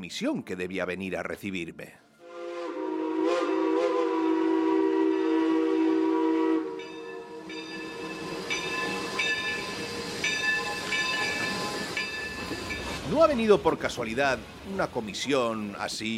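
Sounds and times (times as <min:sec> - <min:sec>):
speech: 0:00.0 - 0:02.1, 0:13.1 - 0:16.1
train whistle at a railway station: 0:02.2 - 0:12.7
rumbling clanking rail noise of a train: 0:06.8 - 0:16.1.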